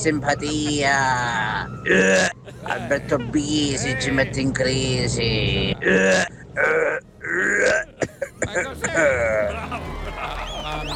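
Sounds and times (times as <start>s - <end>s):
speech: 0.0s - 6.4s
laughter: 0.3s - 3.4s, 7.4s - 10.9s
rough guttural vocal noises: 1.8s - 2.4s, 5.7s - 8.1s
phlegmy throat-clearing grunts: 5.8s - 9.5s.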